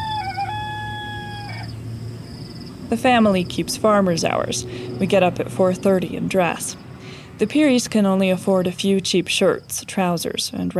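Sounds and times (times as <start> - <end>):
rooster crowing in the morning at a farming family's home: 0.0 - 1.8
constant low hum: 0.0 - 10.7
speech: 2.9 - 6.8, 7.4 - 10.7.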